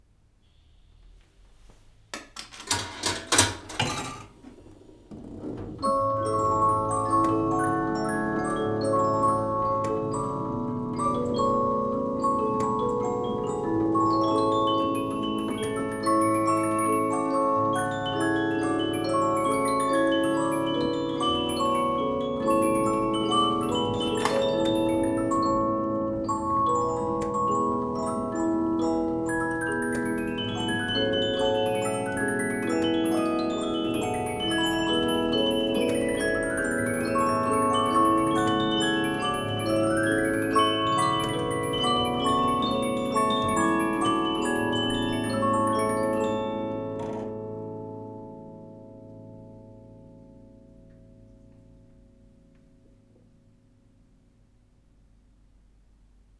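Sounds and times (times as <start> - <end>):
coin-operated metal disc polyphon music box: 2.4 - 4.5, 5.4 - 47.3.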